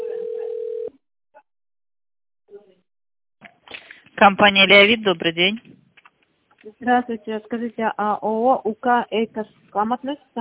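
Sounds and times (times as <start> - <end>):
telephone ringback tone during a call transfer: 0.0 - 1.0
speech: 4.2 - 5.8, 6.8 - 10.3.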